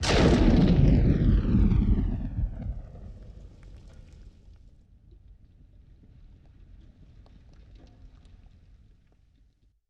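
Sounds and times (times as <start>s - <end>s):
explosion debris falling: 0.0s - 4.3s
WWII combat explosion: 0.0s - 4.6s.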